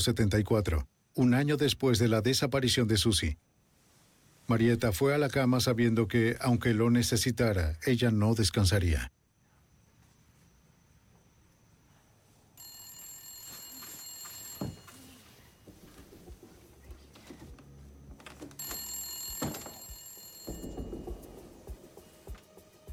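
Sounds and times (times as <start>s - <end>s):
speech: 0.0s - 3.5s, 4.5s - 9.2s
telephone ringing with a bright trill: 12.6s - 16.3s, 18.5s - 21.9s.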